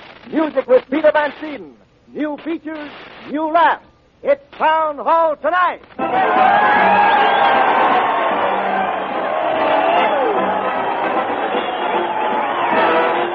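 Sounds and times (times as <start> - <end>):
speech: 0.3 - 7.8
crowd cheering and shouting: 6.0 - 13.3
scattered whoops: 6.0 - 13.3.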